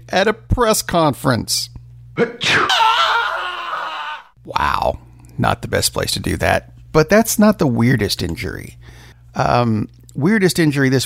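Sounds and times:
speech: 0.1 - 2.8, 4.5 - 11.0
person sneezing: 2.2 - 2.7.

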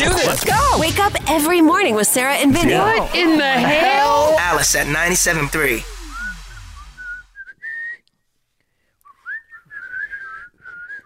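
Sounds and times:
speech: 0.2 - 6.0
person whistling a bright wavering tune: 6.0 - 8.1, 9.0 - 11.0.

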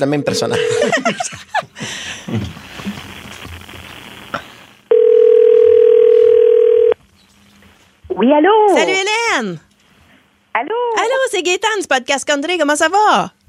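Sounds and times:
speech: 0.0 - 2.5, 8.2 - 9.6, 10.6 - 13.4
laughter: 0.3 - 3.2
telephone dial tone while a call is being placed: 4.9 - 7.0.

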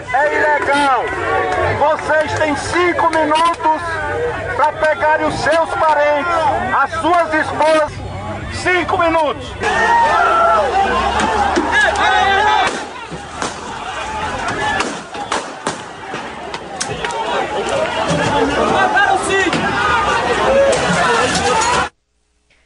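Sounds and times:
dense crowd shouting and clamoring: 0.0 - 21.9
speech: 0.1 - 11.5
gunshots: 12.6 - 13.8, 14.7 - 16.3.

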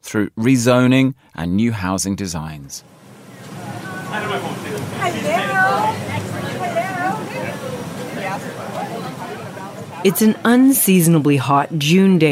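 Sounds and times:
speech: 0.1 - 3.0, 4.1 - 6.3, 10.0 - 12.3
air conditioning blasting inside a city bus on a hot day: 2.8 - 10.1
steady low city bus engine rumble: 2.8 - 10.4
mayors, city councillors, developers and planners chattering inside a moving city bus: 3.2 - 12.3.

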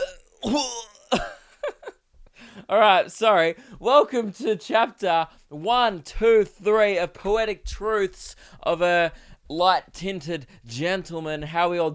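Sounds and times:
person coughing: 0.0 - 1.6
speech: 0.5 - 1.2, 2.7 - 11.9.

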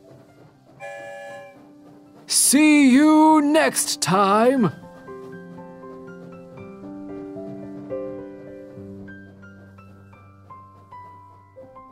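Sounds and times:
low rumbling rail noise: 0.0 - 11.9
train whistle blast: 0.8 - 1.7
speech: 2.3 - 4.8.

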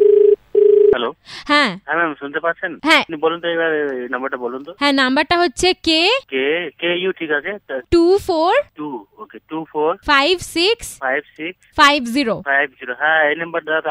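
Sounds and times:
telephone tone as a call is placed over a poor network connection: 0.0 - 1.0
people talking: 1.0 - 13.8.

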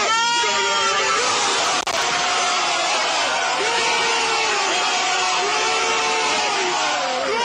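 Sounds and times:
football team yelling celebrating a goal in a final: 0.0 - 7.4.

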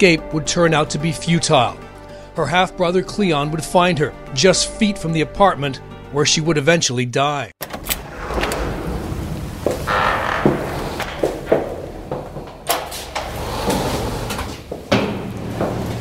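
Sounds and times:
speech: 0.0 - 1.8, 2.4 - 7.6
heavy fire escape door being pulled open: 7.6 - 15.9.

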